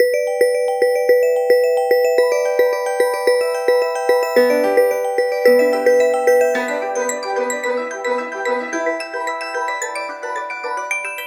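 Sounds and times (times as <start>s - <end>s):
Huawei P Smart phone ringtone: 0.0s - 10.9s.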